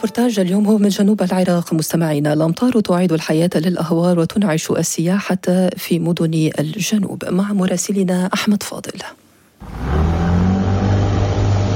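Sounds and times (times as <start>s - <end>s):
speech: 0.0s - 10.3s
engine of a wooden boat in Iraq's southern marshes droning: 9.6s - 11.7s.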